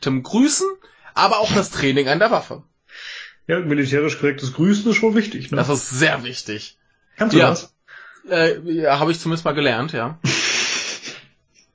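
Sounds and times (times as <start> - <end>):
speech: 0.0 - 10.6
person sneezing: 10.3 - 11.3.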